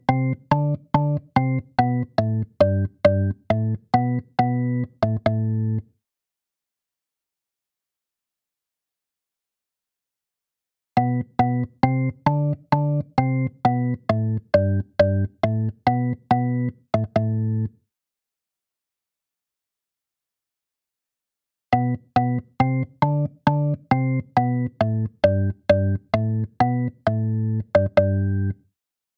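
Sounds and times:
drawbar VST software organ: 0:00.1 - 0:05.8, 0:11.1 - 0:17.7, 0:21.7 - 0:28.5.

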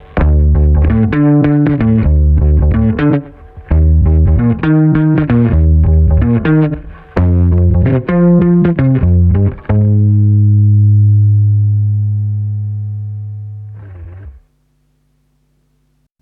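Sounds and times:
compressed mono bass: 0:00.0 - 0:14.5.

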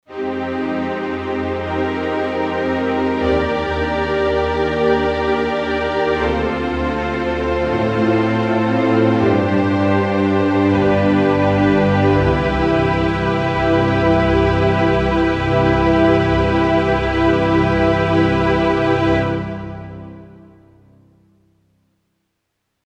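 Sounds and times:
strings ensemble on a digital piano: 0:00.1 - 0:21.2.

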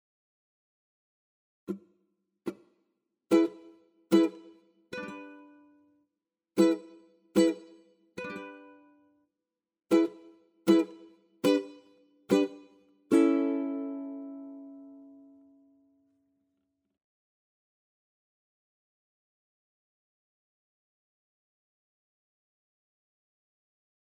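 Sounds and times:
swing ukulele strums: 0:03.3 - 0:05.4, 0:06.6 - 0:08.7, 0:09.9 - 0:14.7.

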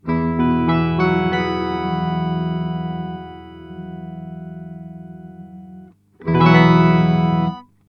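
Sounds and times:
sub and upper octave tones: 0:00.0 - 0:07.6.

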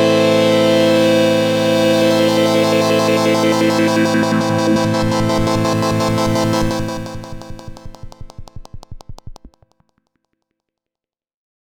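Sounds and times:
filthy synth pad: 0:00.1 - 0:09.8.

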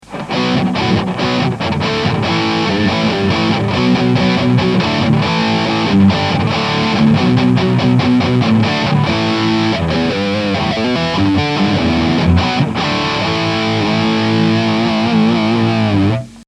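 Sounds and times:
Blackstar guitar amplifier at max gain: 0:00.0 - 0:16.4.

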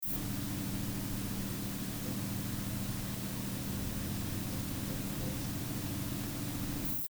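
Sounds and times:
room tone recorded with a dynamic microphone: 0:00.0 - 0:07.0.

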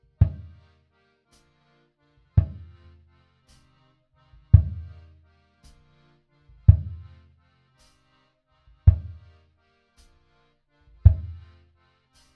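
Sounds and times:
bass drum with EQ boost and cut at 100 Hz: 0:02.4 - 0:02.6, 0:04.6 - 0:04.9, 0:06.7 - 0:07.0, 0:08.9 - 0:09.2, 0:11.1 - 0:11.4.

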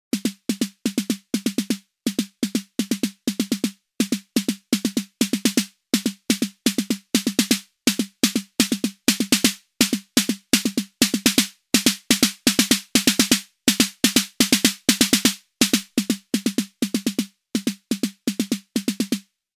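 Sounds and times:
RD-6 drum machine accented snare drum hit: 0:00.1 - 0:19.2.

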